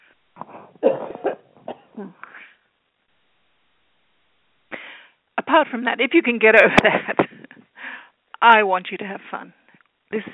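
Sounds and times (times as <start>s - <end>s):
person with a cold coughing harshly: 0.5s - 2.2s
speech: 2.0s - 2.2s, 5.5s - 7.2s, 8.4s - 10.3s.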